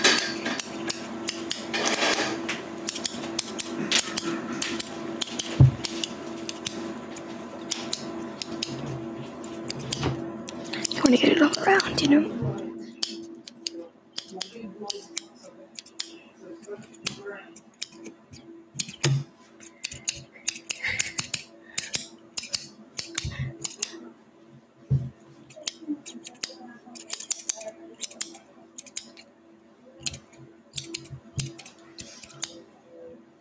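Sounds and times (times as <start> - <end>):
scissors snipping hair: 0.1 - 8.8, 9.4 - 12.1, 13.0 - 24.0, 25.4 - 29.2, 30.0 - 32.6
speech: 11.8 - 12.7.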